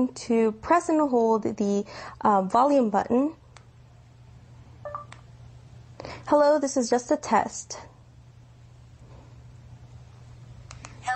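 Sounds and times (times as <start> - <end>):
speech: 0.0 - 3.4, 6.3 - 7.9
phone vibrating to confirm speech recognition: 4.8 - 5.2.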